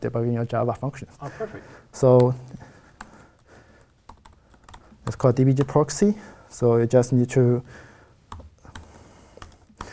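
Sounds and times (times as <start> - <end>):
speech: 0.0 - 2.7, 5.1 - 7.9
typing on a computer keyboard while entering a URL: 3.0 - 5.8, 8.3 - 9.9.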